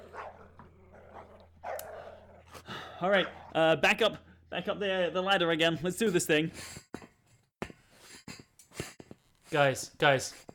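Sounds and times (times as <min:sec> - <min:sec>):
several agitated dogs barking and growling: 0:00.0 - 0:03.6
speech: 0:03.0 - 0:06.8, 0:09.5 - 0:10.5.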